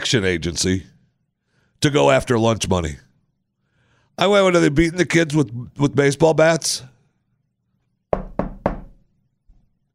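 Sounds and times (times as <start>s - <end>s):
speech: 0.1s - 1.0s, 1.8s - 3.1s, 4.2s - 6.9s
firm knocks on a door: 8.1s - 9.0s.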